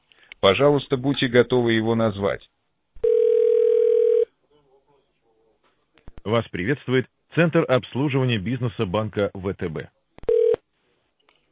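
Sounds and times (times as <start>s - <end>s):
speech: 0.4s - 2.6s, 6.3s - 10.0s
telephone ringing tone while a call connects to a bank: 3.0s - 4.3s, 10.3s - 10.6s.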